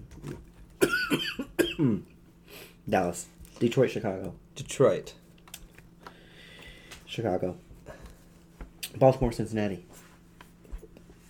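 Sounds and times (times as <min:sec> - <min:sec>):
short tight nervous coughing: 0:00.8 - 0:02.1
speech: 0:01.1 - 0:02.1, 0:02.9 - 0:05.2, 0:07.2 - 0:07.7, 0:08.9 - 0:09.9.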